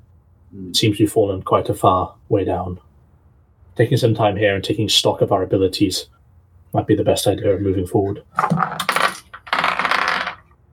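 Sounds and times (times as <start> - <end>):
speech: 0.5 - 2.9, 3.8 - 8.9
dice spilling off a knocked book onto a surface: 8.3 - 10.6.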